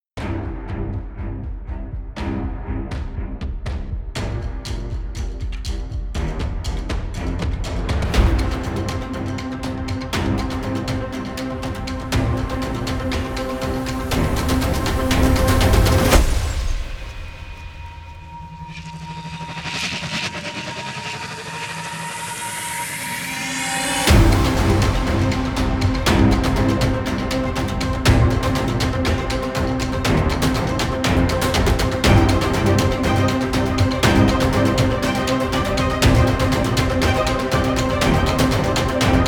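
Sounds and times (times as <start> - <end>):
epic action trailer music: 0.2 - 39.2.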